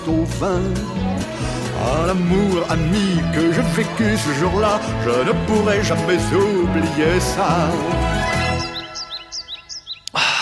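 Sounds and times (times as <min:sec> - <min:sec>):
speech: 0:00.0 - 0:08.3
short bright bird chirps: 0:08.3 - 0:10.2.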